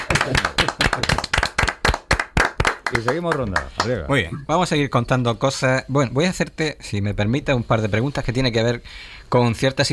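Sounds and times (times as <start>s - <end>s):
audience applauding a contestant after a good answer: 0.0s - 3.4s
speech: 2.9s - 9.9s.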